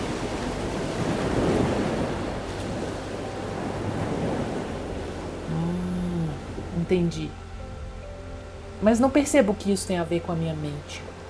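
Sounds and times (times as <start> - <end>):
gusty wind roar: 0.0 - 8.8
ocean waves surging and breaking: 0.0 - 11.2
speech: 6.9 - 7.4, 8.8 - 11.2.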